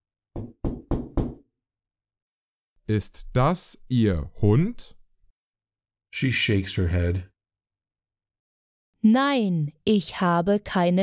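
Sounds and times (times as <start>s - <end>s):
knocking on an apartment door: 0.4s - 1.5s
speech: 2.9s - 5.0s, 6.1s - 7.3s, 9.0s - 11.0s.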